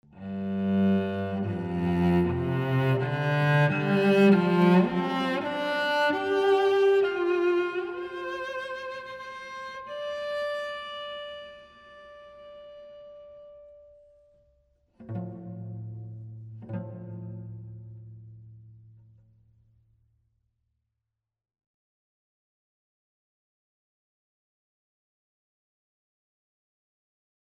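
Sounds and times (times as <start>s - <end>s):
cello in a large hall: 0.0s - 19.3s.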